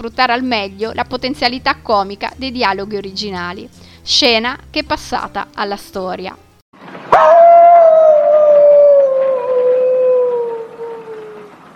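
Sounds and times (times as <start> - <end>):
speech: 0.0 - 6.4
wolf howling: 7.1 - 11.6.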